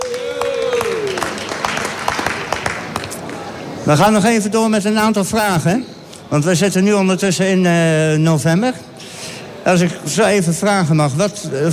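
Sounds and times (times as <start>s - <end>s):
audience applause: 0.0s - 3.1s
speech: 3.9s - 8.9s, 9.6s - 11.7s.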